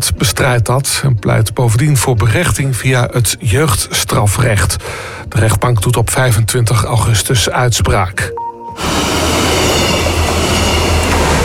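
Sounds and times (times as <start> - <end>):
speech: 0.0 - 9.2
Arriva instruction train crossing the Vriezenbrücke railway bridge: 8.7 - 11.4.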